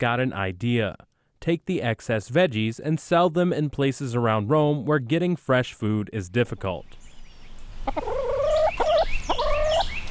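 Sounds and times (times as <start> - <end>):
speech: 0.0 - 7.0, 7.9 - 8.1
chickens clucking: 7.8 - 10.0.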